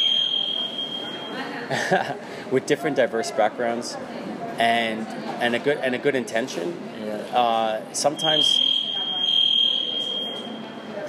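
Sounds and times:
high-pitched electronic alarm tone: 0:00.0 - 0:01.4, 0:08.1 - 0:10.8
laughter: 0:01.3 - 0:02.5
speech: 0:01.7 - 0:08.7.

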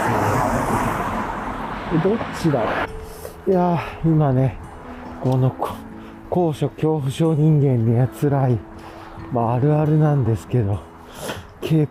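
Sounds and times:
traffic noise from passing cars: 0:00.0 - 0:06.4, 0:08.6 - 0:11.6
speech: 0:01.9 - 0:04.6, 0:05.2 - 0:08.7, 0:09.3 - 0:11.8.

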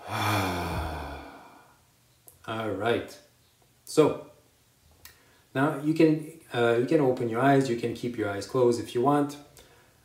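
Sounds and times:
person exhaling deeply after a held breath in a guided meditation breathing exercise: 0:00.0 - 0:01.8
speech: 0:02.5 - 0:03.3, 0:03.9 - 0:04.3, 0:05.5 - 0:09.5.

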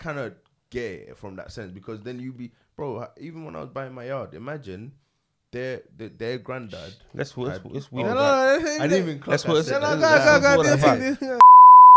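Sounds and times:
speech: 0:00.0 - 0:11.4
loud steady censor bleep: 0:11.4 - 0:11.9.

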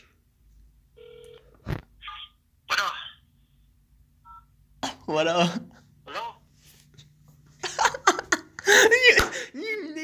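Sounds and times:
low hum: 0:00.0 - 0:10.0
electronic telephone ringing tone of a dialed cell phone: 0:01.0 - 0:01.5
speech: 0:05.1 - 0:05.7.

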